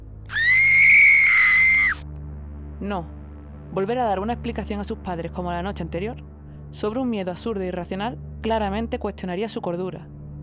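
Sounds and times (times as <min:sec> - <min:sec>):
piercing supernatural shriek in a bedroom: 0:00.3 - 0:02.0
speech: 0:02.8 - 0:10.2.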